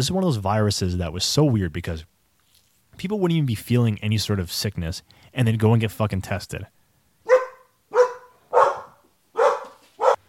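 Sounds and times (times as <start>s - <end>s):
speech: 0.0s - 2.2s, 3.0s - 6.8s
dog barking: 7.2s - 10.2s.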